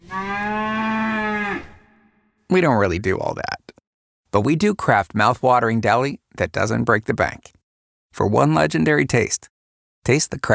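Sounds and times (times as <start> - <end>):
cow mooing: 0.0 - 2.1
speech: 2.5 - 3.6, 4.3 - 10.5.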